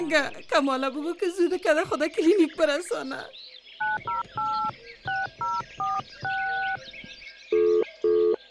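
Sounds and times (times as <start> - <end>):
speech: 0.1 - 6.9
touch-tone telephone keypad beeps dialing a call: 3.8 - 6.9.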